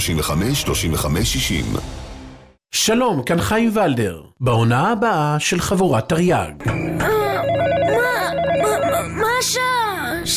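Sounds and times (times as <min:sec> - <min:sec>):
speech: 0:00.0 - 0:02.0, 0:02.7 - 0:06.8, 0:09.4 - 0:10.3
telephone ringing with trilling electronic tone: 0:07.1 - 0:09.6.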